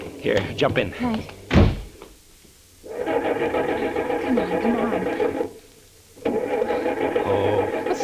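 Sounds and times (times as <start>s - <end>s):
speech: 0.2s - 1.3s
car engine starting: 2.8s - 8.0s.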